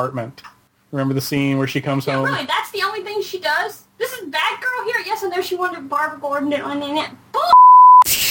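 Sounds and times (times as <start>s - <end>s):
speech: 0.0s - 7.6s
censor bleep over profanity: 7.5s - 8.1s.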